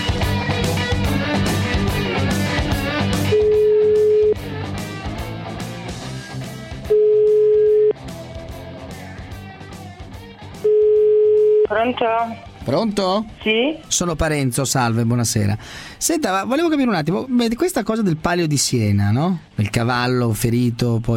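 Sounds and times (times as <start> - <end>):
music: 0.0 - 21.1
telephone ringback beeps as a call is placed: 3.3 - 4.4, 6.9 - 7.9, 10.7 - 11.7
speech: 12.0 - 21.1.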